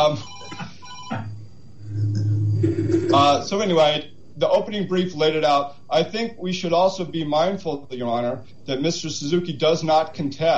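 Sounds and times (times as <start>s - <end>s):
speech: 0.0s - 0.6s, 3.1s - 10.5s
telephone ringing in short electronic bursts: 0.0s - 1.3s
low hum: 0.0s - 10.5s
faint murmuring: 1.1s - 3.8s.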